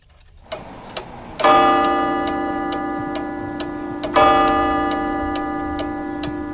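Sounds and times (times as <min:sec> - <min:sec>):
studio clock ticking in a radio studio: 0:00.0 - 0:06.5
ringing chime-like tones: 0:01.4 - 0:06.5.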